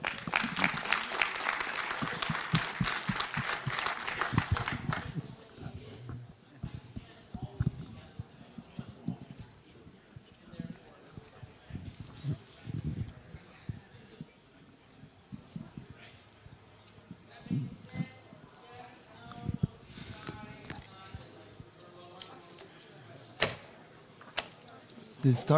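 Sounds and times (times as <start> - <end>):
audience at a talk clapping: 0.0 - 5.2
faint murmuring: 0.0 - 25.5
speech: 25.2 - 25.5.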